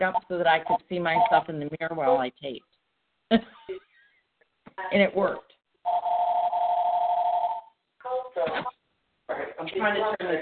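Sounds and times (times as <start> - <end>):
phone ringing with a steady electronic tone: 0.0 - 1.4, 5.9 - 7.8
speech: 0.0 - 3.9, 4.8 - 6.1, 8.4 - 10.4.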